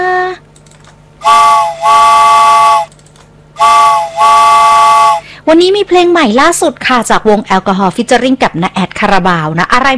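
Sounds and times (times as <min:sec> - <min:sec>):
train whistle blasts as train departs: 0:01.2 - 0:02.9, 0:03.6 - 0:05.3
speech: 0:05.5 - 0:09.9.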